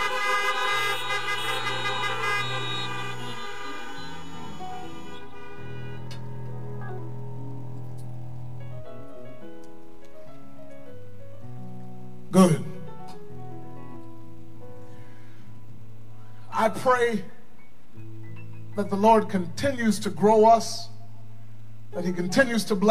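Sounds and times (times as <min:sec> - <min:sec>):
car horns honked by a church audience: 0:00.0 - 0:06.5
speech: 0:16.7 - 0:17.4, 0:18.8 - 0:20.9, 0:22.0 - 0:22.8.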